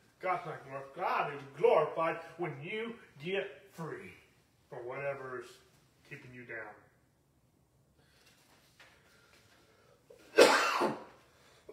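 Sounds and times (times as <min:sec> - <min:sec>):
speech: 0:00.2 - 0:06.9
faint breath noises: 0:08.0 - 0:10.2
harsh forceful raspy cough: 0:10.3 - 0:11.2.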